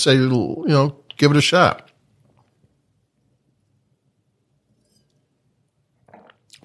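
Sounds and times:
speech: 0.0 - 1.9
sipping wine from a glass: 6.0 - 6.6
slurping swallow: 6.1 - 6.6.

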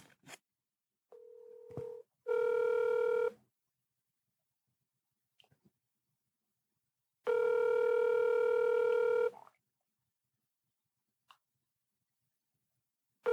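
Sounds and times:
short steady phone line tone: 1.2 - 3.3, 7.3 - 9.3.

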